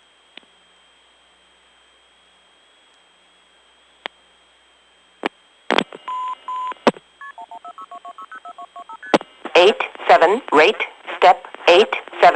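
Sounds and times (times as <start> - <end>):
faint steady telephone line tone: 6.1 - 9.2
speech: 9.6 - 12.3.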